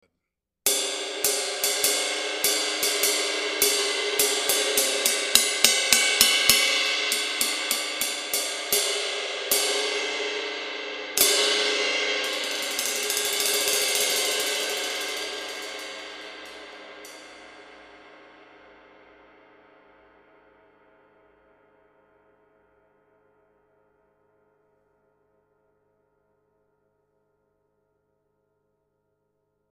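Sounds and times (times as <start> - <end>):
22 inch brilliant medium ride cymbal: 0.7 - 17.8.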